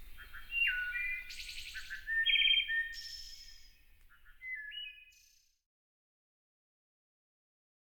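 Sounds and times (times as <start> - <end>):
North American wood thrush song with fluted whistles and trill: 0.0 - 5.5.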